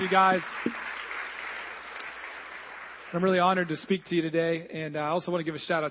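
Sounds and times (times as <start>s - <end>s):
speech: 0.0s - 1.1s, 3.1s - 5.8s
large church audience applauding: 0.0s - 3.8s.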